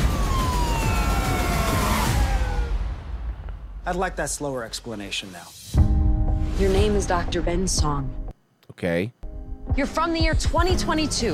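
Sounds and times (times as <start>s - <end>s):
police sirens from two police cars on a hill: 0.0s - 3.0s
speech: 3.9s - 5.6s, 6.6s - 8.2s, 8.8s - 9.2s, 9.8s - 11.3s.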